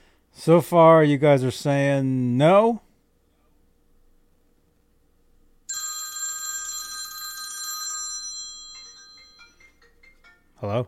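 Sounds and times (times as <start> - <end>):
speech: 0.4 - 2.8, 10.6 - 10.8
telephone bell ringing: 5.7 - 10.4.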